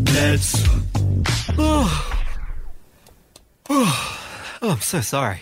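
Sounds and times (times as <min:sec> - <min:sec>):
speech: 0:00.2 - 0:00.8, 0:04.7 - 0:05.4
person yawning: 0:01.5 - 0:02.7, 0:03.7 - 0:04.4.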